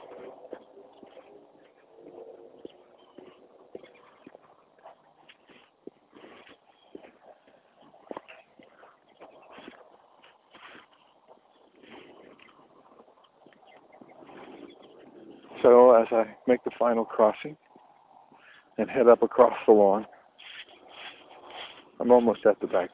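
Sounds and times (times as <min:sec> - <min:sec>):
soft rustling: 0:00.0 - 0:15.7, 0:20.3 - 0:22.5
birds chirping and twittering outdoors in the morning: 0:00.0 - 0:22.9
speech: 0:15.6 - 0:17.6, 0:18.8 - 0:20.1, 0:22.1 - 0:22.9.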